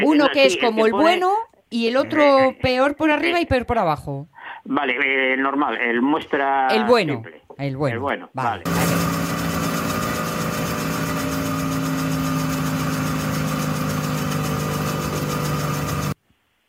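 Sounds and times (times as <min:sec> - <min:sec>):
speech: 0:00.0 - 0:09.1
motor vehicle engine idling: 0:08.7 - 0:16.2.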